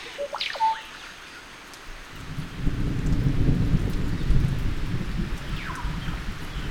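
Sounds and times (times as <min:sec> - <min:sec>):
faint bird chirps: 0:00.0 - 0:01.2
heavy rain from a thunderstorm: 0:00.0 - 0:06.6.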